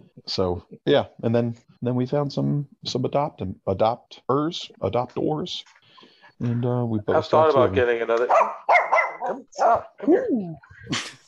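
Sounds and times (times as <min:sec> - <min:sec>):
speech: 0:00.3 - 0:05.8, 0:06.4 - 0:11.2
dog barking and yipping: 0:08.2 - 0:10.3
dog yelping: 0:08.3 - 0:10.7.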